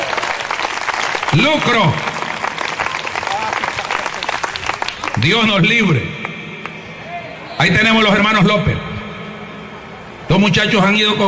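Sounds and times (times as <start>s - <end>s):
congregation applauding during a church service: 0.0s - 6.7s
speech: 1.4s - 2.1s, 5.2s - 6.3s, 7.6s - 8.9s, 10.3s - 11.2s.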